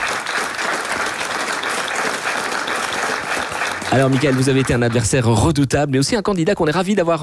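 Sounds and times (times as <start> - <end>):
studio audience applauding: 0.0 - 5.7
speech: 3.9 - 7.2.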